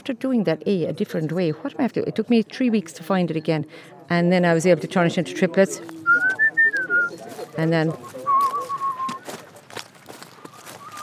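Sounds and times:
speech: 0.0s - 6.4s, 7.6s - 8.2s
scuffing noises: 5.8s - 11.0s
person whistling a tune: 6.1s - 7.1s, 8.2s - 9.3s.

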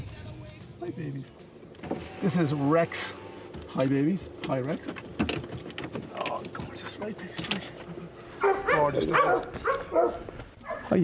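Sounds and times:
speech: 0.8s - 1.4s, 2.2s - 3.2s, 3.8s - 5.1s, 7.0s - 11.0s
dog yelping and whining: 8.4s - 10.8s.

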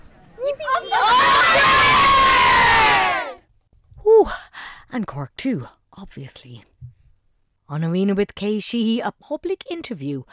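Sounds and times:
group of children cheering: 0.4s - 3.4s
speech: 5.0s - 6.9s, 7.7s - 10.3s.

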